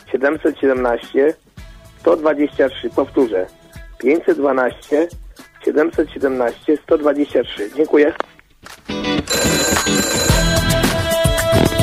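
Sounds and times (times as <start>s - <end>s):
speech: 0.1s - 8.3s
telephone ringing for an incoming call: 9.0s - 11.7s.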